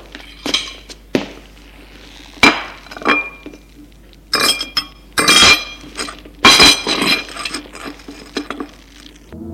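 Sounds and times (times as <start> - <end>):
dishes and cutlery clinking as a table is set for lunch: 0.1 - 1.0, 2.5 - 3.7, 4.3 - 9.1.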